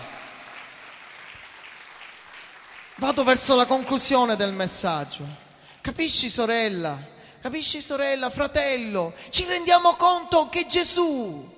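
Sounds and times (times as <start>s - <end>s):
congregation applause at a religious service: 0.0s - 5.4s
speech: 3.0s - 11.5s.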